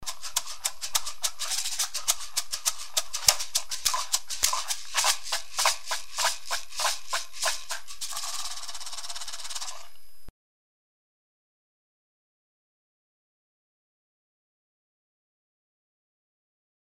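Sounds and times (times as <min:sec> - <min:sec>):
shakers: 0:00.0 - 0:09.9.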